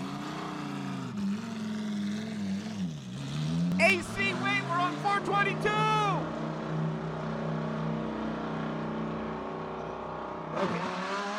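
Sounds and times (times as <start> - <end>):
car with upgraded muffler revving with throaty exhaust: 0.0 - 11.3
speech: 5.2 - 6.0.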